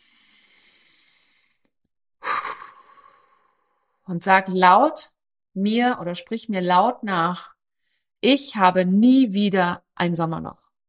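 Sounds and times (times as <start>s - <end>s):
deep breath: 0.0s - 4.0s
speech: 4.1s - 7.6s, 8.2s - 10.6s.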